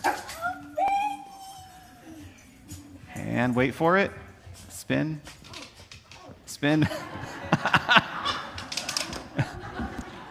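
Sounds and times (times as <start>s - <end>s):
excited pet dog whimpering and yipping greeting its owners: 0.0s - 3.0s
faint noise: 0.0s - 10.2s
speech: 3.4s - 4.2s, 4.9s - 5.4s, 6.6s - 7.1s
laughter: 6.7s - 10.2s.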